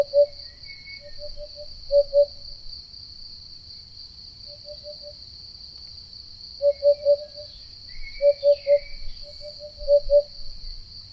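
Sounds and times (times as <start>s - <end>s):
Eurasian hoopoe Upupa epops hooting: 0.0s - 2.4s, 6.6s - 10.4s
steady high-pitched insect drone: 0.0s - 11.1s.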